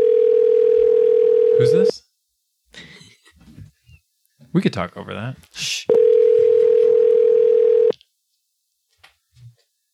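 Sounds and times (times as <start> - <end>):
telephone line tone while placing a call: 0.0 - 1.9, 5.9 - 7.9
speech: 1.6 - 2.0, 4.5 - 6.0.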